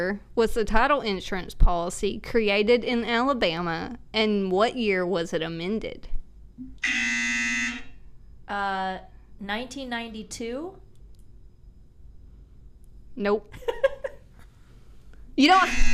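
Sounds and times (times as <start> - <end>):
speech: 0.0 - 7.2, 8.5 - 10.8, 13.2 - 13.9, 15.4 - 15.9
loud harsh game-show buzzer hit by quiz contestants: 6.8 - 7.9, 15.6 - 15.9.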